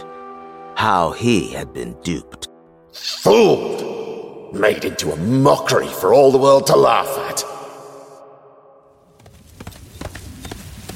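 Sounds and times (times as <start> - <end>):
speech: 0.8 - 3.8, 4.5 - 7.5
exhausted wounded horse hooves clip-clopping at uneven gait: 9.0 - 10.9.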